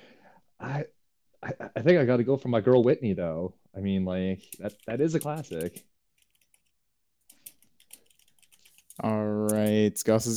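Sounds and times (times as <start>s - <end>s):
speech: 1.8s - 5.9s, 9.0s - 10.3s
typing on a computer keyboard to look up a song: 4.4s - 9.8s.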